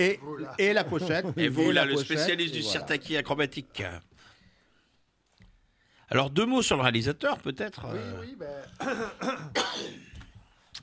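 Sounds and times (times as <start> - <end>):
speech: 0.0 - 4.1, 6.1 - 10.1
man clearing his throat: 8.0 - 10.2
man coughing: 8.0 - 10.2.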